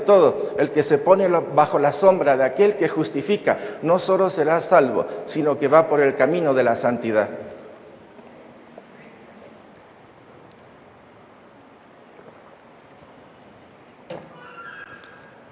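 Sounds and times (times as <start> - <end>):
speech: 0.0 - 7.4
outdoor noise: 0.0 - 15.5
horse neighing: 14.1 - 15.5.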